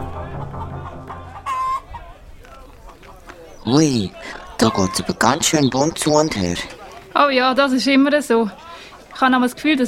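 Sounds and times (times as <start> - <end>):
chickens clucking and squawking in cages: 0.0 - 7.1
busy murmuring background: 0.0 - 9.8
speech: 3.7 - 8.6, 9.2 - 9.8.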